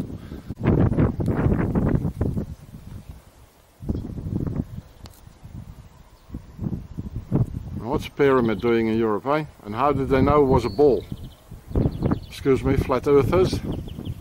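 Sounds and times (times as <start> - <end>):
gusty wind buffeting the microphone outdoors at an old castle: 0.0 - 14.1
speech: 8.0 - 11.2, 12.4 - 13.8.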